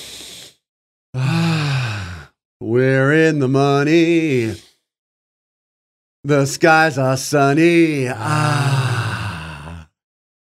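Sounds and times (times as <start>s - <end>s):
deep breath taken to clear the mind: 0.0s - 2.4s, 4.4s - 5.0s, 8.3s - 10.0s
speech: 2.8s - 4.7s, 6.2s - 8.7s.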